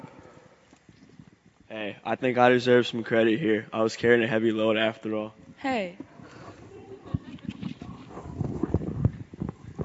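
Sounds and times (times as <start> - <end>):
speech: 1.7 - 6.0
camel hooves clip-clopping: 6.0 - 9.8.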